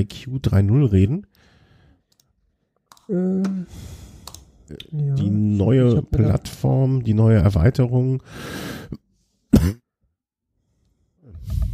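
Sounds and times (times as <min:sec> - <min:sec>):
speech: 0:00.0 - 0:01.5, 0:03.1 - 0:04.0, 0:04.7 - 0:09.8
person coughing: 0:09.5 - 0:09.9.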